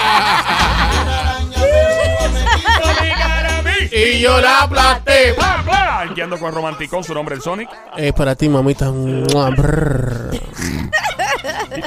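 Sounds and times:
laughter: 0.0s - 3.8s, 5.7s - 8.1s, 9.0s - 11.8s
speech: 4.2s - 11.0s
person imitating a barking chihuahua: 8.8s - 10.9s.

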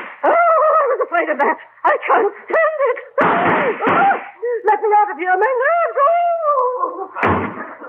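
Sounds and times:
speech: 1.2s - 7.7s
door slamming shut hard: 7.2s - 7.7s.

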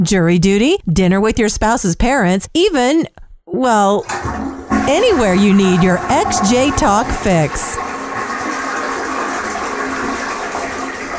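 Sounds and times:
speech: 0.0s - 7.9s
toilet flushing: 4.0s - 11.1s.

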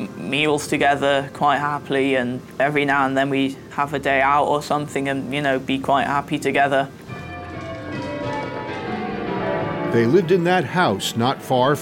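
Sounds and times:
speech: 0.3s - 7.1s, 9.9s - 11.8s
large bells of a medieval abbey ringing: 7.0s - 11.8s.

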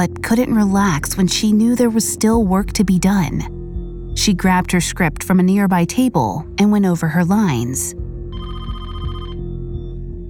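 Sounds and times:
speech: 0.0s - 3.6s, 4.2s - 8.0s
low steady hum: 0.0s - 10.2s
telephone ringing in a fast-trilling electronic burst: 8.3s - 9.5s.

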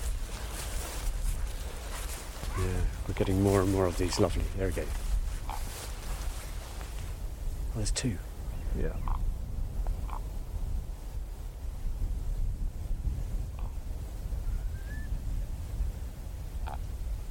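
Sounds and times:
steady rumble of wind: 0.0s - 17.2s
speech: 2.6s - 5.0s, 7.8s - 9.3s
raven giving short hoarse croaks: 5.4s - 5.8s, 8.9s - 9.3s, 10.0s - 10.4s, 16.6s - 16.9s.

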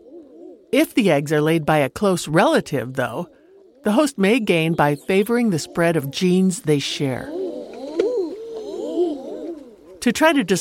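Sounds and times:
common eider cooing with low wavering moans: 0.0s - 0.8s, 3.0s - 10.5s
speech: 0.7s - 7.4s, 10.0s - 10.5s.

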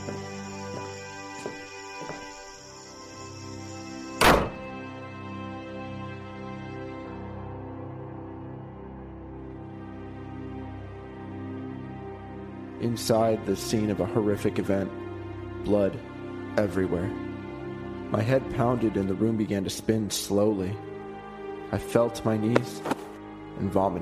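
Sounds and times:
door slamming shut: 4.2s - 4.7s
speech: 12.8s - 15.0s, 15.6s - 17.2s, 18.1s - 20.9s, 21.7s - 23.0s, 23.6s - 24.0s.

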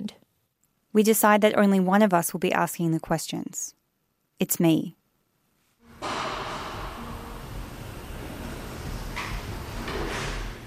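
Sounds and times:
speech: 1.0s - 3.8s, 4.4s - 5.0s
heavy sliding metal jail doors rolling along their track: 5.8s - 10.6s.

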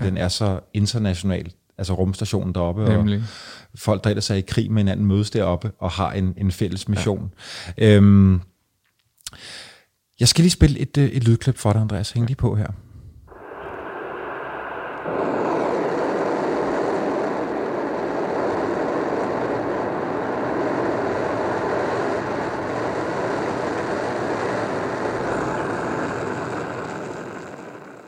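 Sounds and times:
speech: 0.0s - 8.5s, 9.3s - 12.8s
Soyuz spacecraft rocket launch roar: 13.3s - 28.0s.

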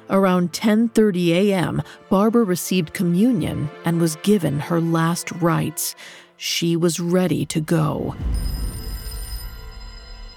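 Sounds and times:
speech: 0.1s - 8.6s
low rumble: 8.1s - 10.3s
telephone ringing: 8.2s - 10.3s.

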